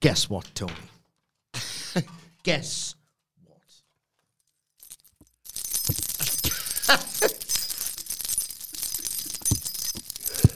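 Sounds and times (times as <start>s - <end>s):
speech: 0.0s - 0.9s, 2.0s - 3.0s, 6.9s - 7.4s
bunch of keys jangling and clinking: 4.8s - 10.5s.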